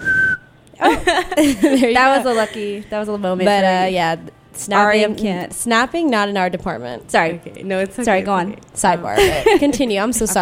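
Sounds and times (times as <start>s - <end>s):
person whistling: 0.0s - 0.6s
laughter: 0.8s - 2.8s, 9.2s - 10.4s
speech: 0.8s - 10.4s.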